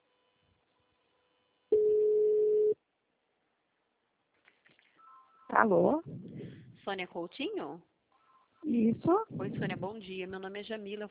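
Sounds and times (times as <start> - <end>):
telephone ringback tone while an outgoing call connects: 1.7 - 2.8
speech: 5.5 - 7.9, 8.6 - 11.0.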